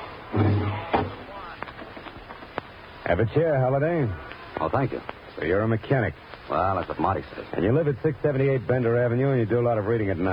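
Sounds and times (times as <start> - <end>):
door closing: 0.4 - 1.3
speech: 3.1 - 10.3.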